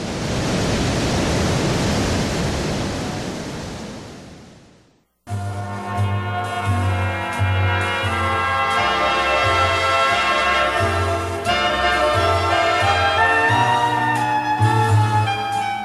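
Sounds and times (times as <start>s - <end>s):
Niagara Falls roaring from the Canadian side: 0.0s - 5.0s
music: 5.3s - 15.8s.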